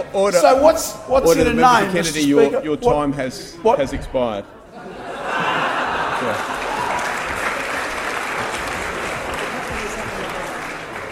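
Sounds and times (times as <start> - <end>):
faint murmur of voices: 0.0 - 11.1
speech: 0.1 - 5.0, 6.2 - 6.5
laughter: 4.6 - 8.0
audience clapping during parliamentary debate: 5.5 - 11.1.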